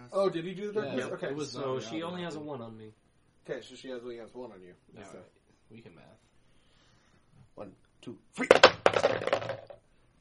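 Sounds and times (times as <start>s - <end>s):
speech: 0.1s - 6.3s, 7.6s - 9.5s
dice clattering across a hard table: 8.4s - 9.8s.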